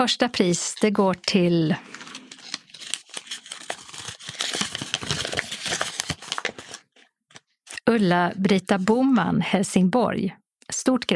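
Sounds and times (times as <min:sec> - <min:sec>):
speech: 0:00.0 - 0:02.1, 0:07.9 - 0:11.1
paper lottery slips shuffled in a golden trophy cup: 0:00.5 - 0:07.8.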